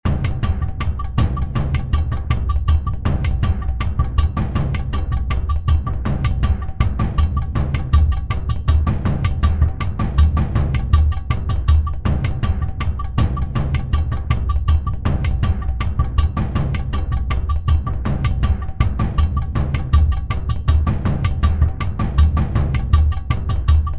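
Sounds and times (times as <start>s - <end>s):
udu drum: 0.1s - 23.9s.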